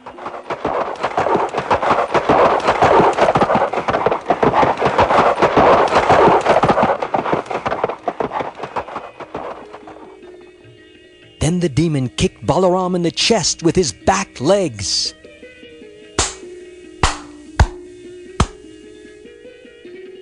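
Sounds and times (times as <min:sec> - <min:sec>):
heavy donkey hooves galloping: 0:00.0 - 0:10.7
speech: 0:11.6 - 0:15.2.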